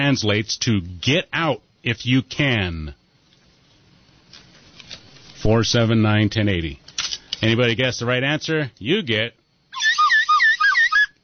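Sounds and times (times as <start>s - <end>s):
speech: 0.0s - 3.0s, 5.4s - 6.8s, 7.4s - 9.9s
slide whistle glides: 9.7s - 11.2s.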